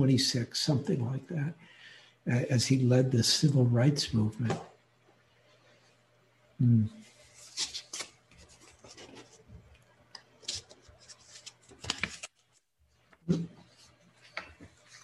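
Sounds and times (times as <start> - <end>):
speech: 0.0 - 4.7, 6.6 - 7.0
paper sheets being shuffled: 7.2 - 9.5, 10.4 - 12.7, 13.3 - 15.0.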